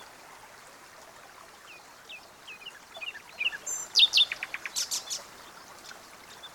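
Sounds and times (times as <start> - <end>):
quiet background hiss: 0.0 - 6.5
common nightingale Luscinia megarhynchos singing: 1.7 - 6.5.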